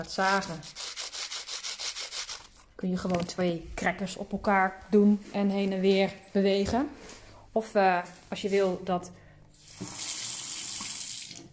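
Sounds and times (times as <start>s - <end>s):
speech: 0.0s - 1.0s, 2.8s - 9.2s, 9.8s - 10.0s
water running from a tap: 9.6s - 11.5s.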